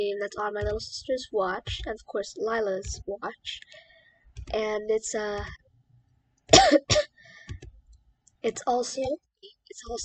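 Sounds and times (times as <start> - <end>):
speech: 0.0 - 5.6, 6.6 - 7.1, 8.4 - 10.0
harsh coughs: 6.5 - 7.1.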